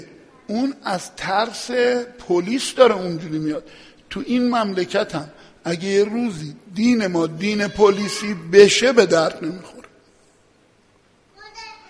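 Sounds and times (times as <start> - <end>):
speech: 0.5 - 9.8
young child babbling in the audience: 11.3 - 11.8.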